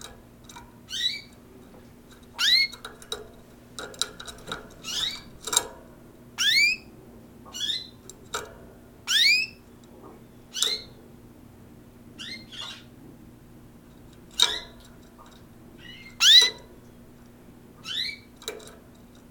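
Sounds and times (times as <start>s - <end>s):
faint steady hum: 0.0s - 19.2s
several canaries chirping: 0.8s - 1.4s, 2.2s - 3.3s, 4.3s - 5.7s, 6.3s - 8.4s, 9.0s - 11.0s, 12.2s - 12.9s, 14.3s - 14.9s, 15.8s - 16.7s, 17.8s - 18.5s.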